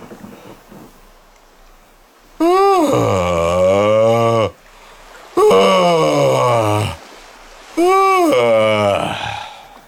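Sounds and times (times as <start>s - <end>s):
person giving exaggerated yawns imitating a shipbuilder: 2.4s - 4.6s, 5.4s - 7.0s, 7.8s - 9.7s.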